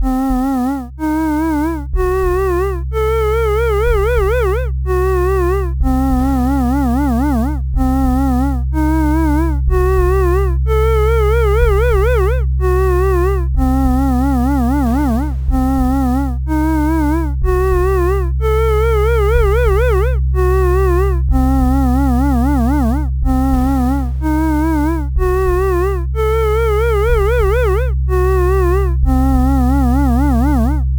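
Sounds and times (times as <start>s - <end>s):
dark siren: 0.0s - 30.9s.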